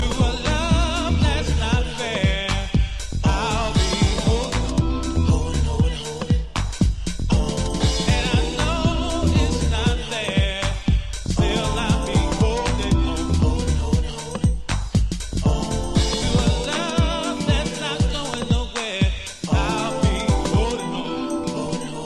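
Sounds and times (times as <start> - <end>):
big beat music: 0.0 - 22.0.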